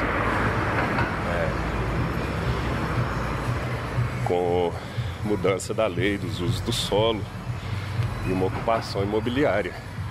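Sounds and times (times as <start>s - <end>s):
passing car traffic rumble and roar: 0.0s - 10.0s
speech: 4.3s - 7.4s, 8.2s - 9.9s.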